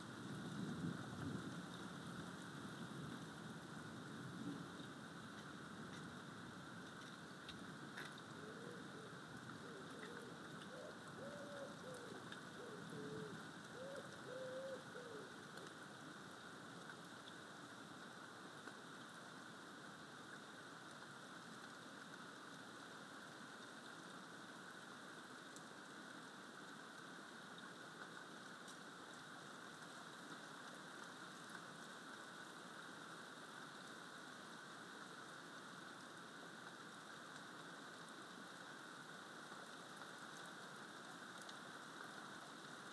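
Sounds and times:
steady hissing rain: 0.0 - 42.9.

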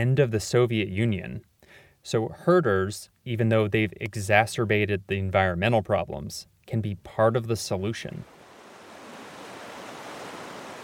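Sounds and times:
speech: 0.0 - 8.4
rushing river below walnut forests in Kyrgyzstan: 8.2 - 10.8.

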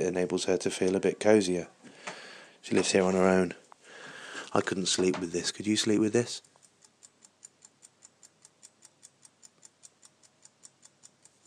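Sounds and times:
speech: 0.0 - 1.8, 2.6 - 3.6, 4.5 - 6.5
faint hiss: 0.0 - 11.4
clock ticking: 4.2 - 11.4.

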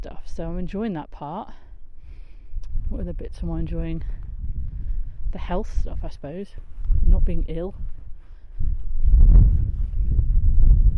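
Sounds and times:
speech: 0.0 - 1.6, 2.9 - 4.2, 5.3 - 7.9
wind gusting into the microphone: 2.4 - 10.9.

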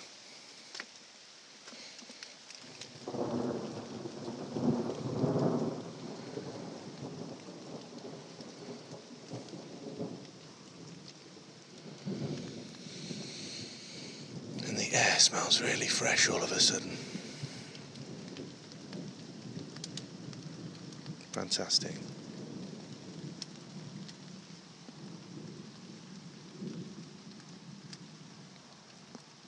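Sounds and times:
steady rain hissing: 0.0 - 29.4
deep rumbling thunderclap during rainstorm: 3.0 - 11.0, 11.8 - 24.1
speech: 15.2 - 17.0, 21.5 - 22.1.

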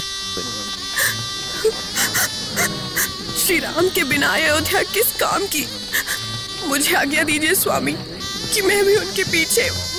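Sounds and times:
woman crying and sobbing: 1.0 - 3.1
speech: 3.5 - 9.9.

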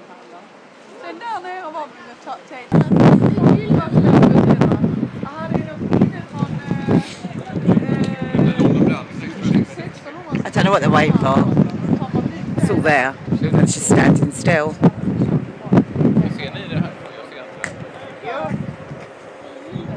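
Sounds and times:
speech: 1.1 - 4.6, 10.7 - 11.6, 12.7 - 15.2
strong wind blowing outdoors on a grey day in London buffeting the microphone: 2.7 - 19.9.

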